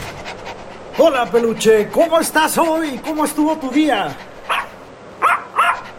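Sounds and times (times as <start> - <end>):
speech: 1.0 - 4.3
female pet dog barking: 4.5 - 5.9.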